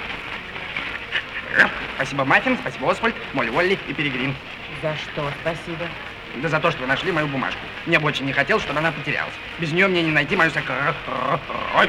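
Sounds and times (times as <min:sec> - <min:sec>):
laughter: 0:00.0 - 0:11.8
puppy panting: 0:00.4 - 0:04.5
speech: 0:01.6 - 0:11.8.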